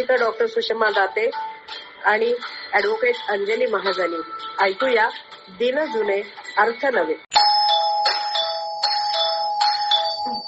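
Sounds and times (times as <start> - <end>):
speech: 0.0 - 7.3
electronic doorbell ringing on a door: 7.4 - 10.4.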